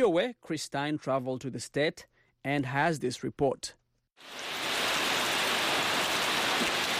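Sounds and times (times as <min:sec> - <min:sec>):
speech: 0:00.0 - 0:04.6
heavy rain falling on a ruined church: 0:04.2 - 0:06.9.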